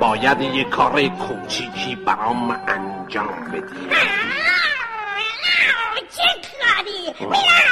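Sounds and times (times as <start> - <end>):
speech: 0.0 - 4.7, 5.6 - 7.7
cat meowing insistently: 3.8 - 6.0.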